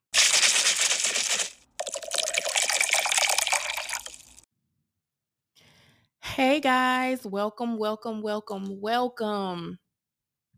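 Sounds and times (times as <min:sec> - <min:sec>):
rosé wine pouring into a glass: 0:00.2 - 0:04.4
speech: 0:06.4 - 0:09.8.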